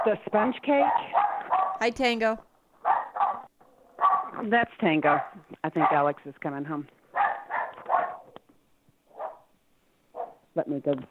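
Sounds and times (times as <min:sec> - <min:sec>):
speech: 0:00.0 - 0:01.2, 0:01.8 - 0:02.5, 0:04.4 - 0:07.0, 0:10.6 - 0:11.0
small dog barking: 0:00.8 - 0:01.8, 0:02.8 - 0:04.4, 0:05.1 - 0:06.1, 0:07.1 - 0:08.4, 0:09.1 - 0:09.5, 0:10.2 - 0:10.4.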